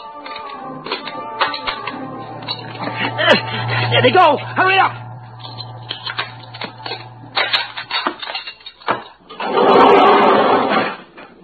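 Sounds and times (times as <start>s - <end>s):
door lock mechanism grinding as it is forced: 0.2s - 10.4s
blade prying at a door lock with metallic scrapes and clanks: 0.2s - 11.0s
speech: 3.2s - 5.0s.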